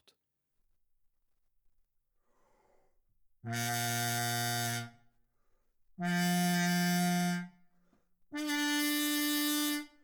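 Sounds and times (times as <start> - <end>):
trombone with harmon mute playing loudly: 3.5 - 4.9, 6.0 - 7.5, 8.3 - 9.8.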